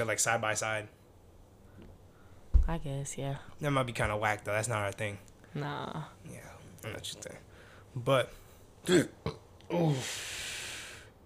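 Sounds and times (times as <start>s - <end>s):
speech: 0.0s - 1.0s, 2.7s - 10.4s
guttural voiced sound trailing into a breathy hiss: 8.9s - 10.0s
person burping: 8.9s - 10.0s.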